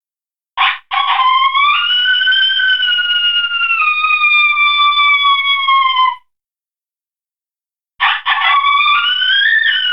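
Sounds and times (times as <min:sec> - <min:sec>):
coyote howling: 0:00.6 - 0:06.2, 0:08.0 - 0:09.9
coyote barking: 0:08.0 - 0:09.9.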